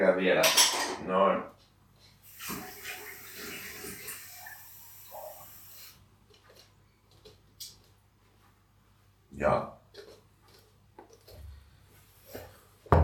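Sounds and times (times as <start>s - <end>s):
speech: 0.0s - 1.6s, 2.4s - 2.7s, 9.4s - 9.7s
water pouring from a tap into a small drinking glass: 2.2s - 6.0s.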